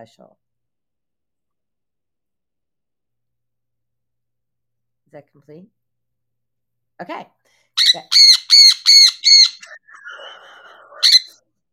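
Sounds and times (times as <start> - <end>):
speech: 0.0 - 0.4, 5.1 - 5.8, 7.0 - 11.1
birds squawking: 7.8 - 11.4.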